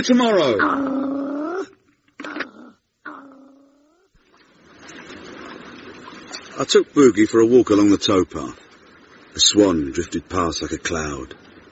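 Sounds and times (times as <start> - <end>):
speech: 0.0 - 1.1, 6.6 - 8.6, 9.4 - 11.4
animal growling in drawn-out wavering yowls: 0.5 - 4.1.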